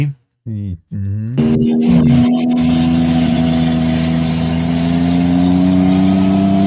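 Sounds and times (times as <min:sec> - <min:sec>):
speech: 0:00.0 - 0:02.6
motorcycle engine revved and held at high RPM: 0:01.4 - 0:06.6.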